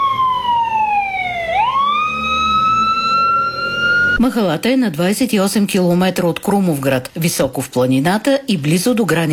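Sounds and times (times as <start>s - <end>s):
ambulance siren wailing as the crew leaves on an emergency call: 0.0s - 4.2s
speech: 4.2s - 9.3s.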